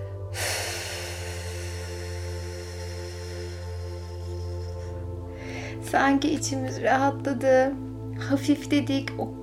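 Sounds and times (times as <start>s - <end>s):
deep breath in and out during a guided relaxation breathing exercise: 0.0s - 5.8s
steady low drone: 0.0s - 8.4s
speech: 5.9s - 9.4s.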